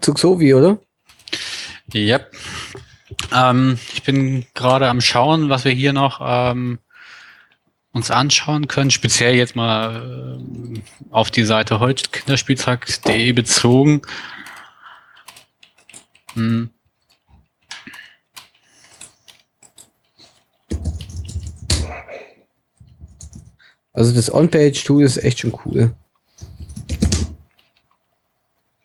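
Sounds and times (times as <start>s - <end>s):
speech: 0.0s - 6.8s, 7.9s - 14.4s, 16.4s - 16.8s, 24.0s - 26.0s
loud computer keyboard typing: 1.0s - 3.4s, 7.5s - 22.0s, 22.8s - 23.6s, 26.4s - 28.1s.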